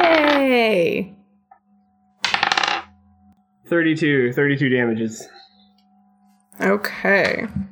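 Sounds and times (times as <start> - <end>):
handful of dice rolling across a hard tabletop: 0.0 - 0.5, 2.2 - 2.9
speech: 3.7 - 5.4, 6.6 - 7.7.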